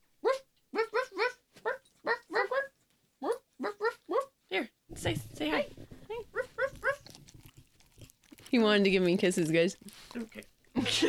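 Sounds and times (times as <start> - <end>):
male pet puppy whining and whimpering: 0.2 - 4.4, 6.1 - 8.1
speech: 4.6 - 5.8, 8.5 - 10.5.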